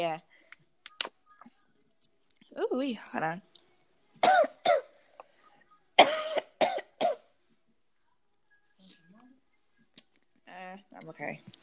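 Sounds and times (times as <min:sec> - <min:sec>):
speech: 0:00.0 - 0:00.3, 0:02.6 - 0:03.5, 0:10.6 - 0:11.6
person coughing harshly from choking on something in the throat: 0:04.2 - 0:04.9, 0:06.0 - 0:07.2.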